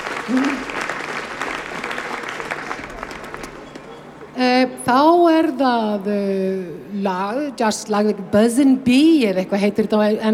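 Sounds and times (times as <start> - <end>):
audience applauding: 0.0 - 4.3
speech: 0.3 - 0.8, 4.9 - 10.3.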